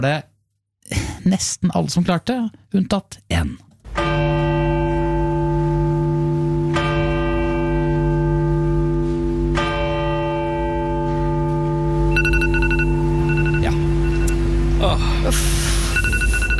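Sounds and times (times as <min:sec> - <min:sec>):
speech: 0:00.0 - 0:00.3, 0:01.2 - 0:04.3, 0:14.8 - 0:15.6
deep church bell tolling for a royal funeral: 0:03.8 - 0:12.3
mobile phone alarm beeping in a church: 0:12.1 - 0:14.4, 0:15.8 - 0:16.5.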